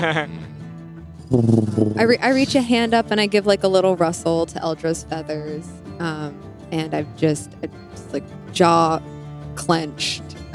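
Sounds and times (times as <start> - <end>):
speech: 0.0 - 0.5, 1.3 - 10.4
voice imitating an owl's purr-like trill: 1.3 - 2.1.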